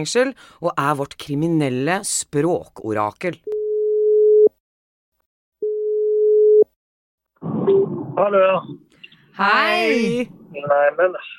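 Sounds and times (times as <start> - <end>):
speech: 0.0 - 3.5, 7.7 - 11.3
telephone ringing tone beeps while calling someone: 3.5 - 4.5, 5.6 - 6.7.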